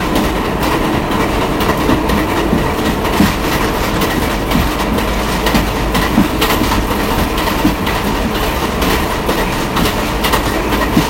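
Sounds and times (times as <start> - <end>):
R62 Kawasaki subway train running: 0.0 - 11.0.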